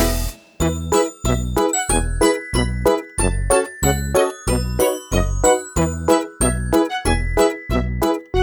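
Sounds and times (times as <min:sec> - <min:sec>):
fire truck bell ringing: 0:00.0 - 0:08.3.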